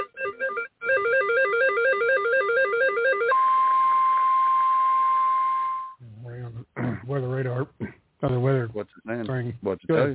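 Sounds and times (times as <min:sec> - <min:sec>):
electronic telephone warbling trill: 0:00.0 - 0:06.0
speech: 0:08.3 - 0:10.1.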